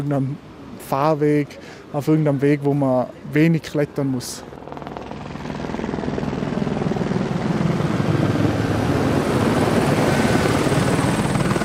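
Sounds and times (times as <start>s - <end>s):
speech: 0.0s - 4.5s
police helicopter rotor chopping over a training centre: 4.2s - 11.6s.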